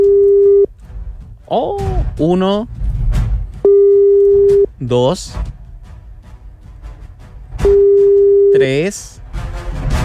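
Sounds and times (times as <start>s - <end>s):
loud steady single-pitch telephone tone: 0.0s - 0.7s, 3.7s - 4.7s, 7.6s - 8.6s
telephone tones while dialing a number: 0.0s - 0.7s, 3.7s - 4.7s
low soft rumble: 0.0s - 8.5s
speech: 1.5s - 2.8s, 4.8s - 5.5s, 8.6s - 9.2s.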